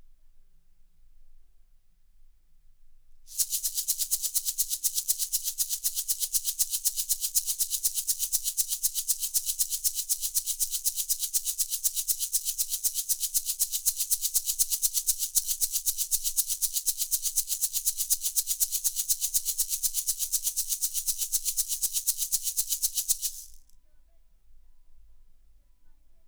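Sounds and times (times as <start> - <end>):
shaker: 3.3 - 23.8.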